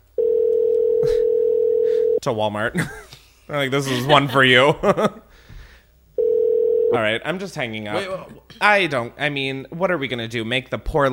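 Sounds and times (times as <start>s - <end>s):
electronic phone line ringing tone during a call transfer: 0.2s - 2.2s, 6.2s - 7.0s
speech: 2.2s - 5.3s, 6.9s - 11.1s.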